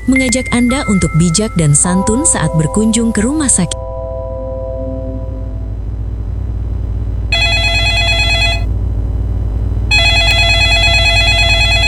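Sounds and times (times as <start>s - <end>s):
speech: 0.0s - 3.8s
telephone ringing: 0.0s - 5.8s, 7.4s - 8.7s, 9.9s - 11.8s
steady low hum: 0.0s - 11.8s.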